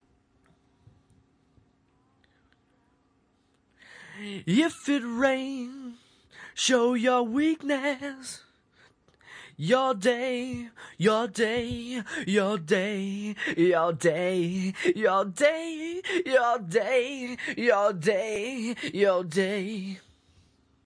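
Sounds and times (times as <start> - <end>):
male a cappella vocal at 180 bpm: 4.0 - 8.6, 9.3 - 20.1.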